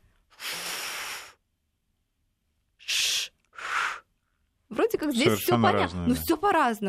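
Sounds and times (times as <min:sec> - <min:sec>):
woman blowing a long steady breath into puffed cheeks: 0:00.4 - 0:01.4, 0:02.9 - 0:04.1
woman making short sharp sh hisses: 0:00.4 - 0:01.4, 0:02.8 - 0:04.1
speech: 0:04.7 - 0:06.8.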